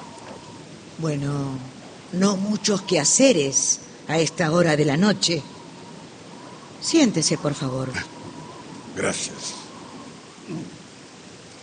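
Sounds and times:
heavy rain: 0.0s - 11.6s
speech: 1.0s - 5.6s, 6.8s - 8.2s, 9.0s - 9.6s, 10.5s - 10.8s.

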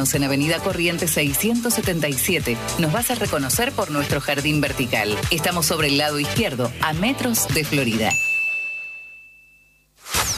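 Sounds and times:
speech: 0.0s - 8.3s
boxing bell ringing for a round: 8.1s - 9.9s.

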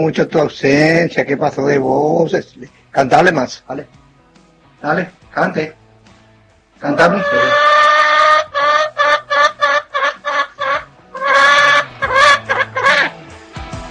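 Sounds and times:
speech: 0.1s - 4.0s, 4.8s - 5.8s, 6.8s - 7.6s
hen clucking: 6.9s - 13.1s.

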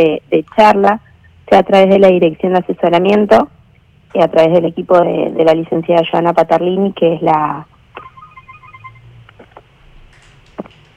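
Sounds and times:
speech: 0.0s - 7.7s
phone ringing with an incoming call: 7.9s - 9.2s.

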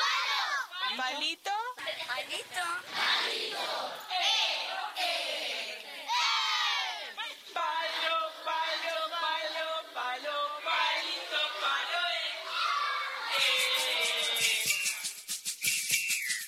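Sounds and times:
group of children chanting a circle-game song: 0.0s - 1.0s, 1.8s - 14.3s
speech: 0.9s - 4.6s
clapping-like noises: 13.4s - 16.4s.

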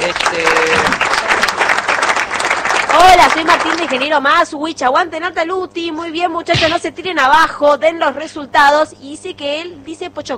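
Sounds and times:
applause: 0.0s - 4.2s
speech: 3.3s - 10.3s.

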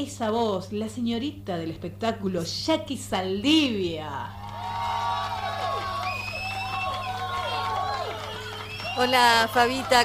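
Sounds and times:
speech: 0.0s - 4.4s, 9.0s - 10.0s
crowd cheering and applauding in a sustained ovation: 4.4s - 10.0s
people shouting: 4.6s - 10.0s
whistles: 5.9s - 9.8s.

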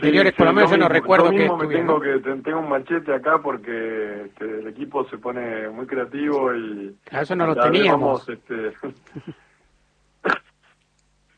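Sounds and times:
speech: 0.0s - 9.4s, 10.2s - 10.4s
sharp sneeze: 10.2s - 10.7s.

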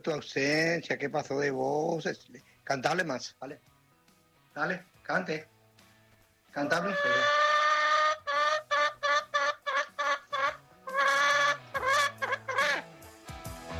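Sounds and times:
speech: 0.0s - 3.7s, 4.6s - 5.5s, 6.6s - 7.3s
hen clucking: 6.6s - 12.9s.

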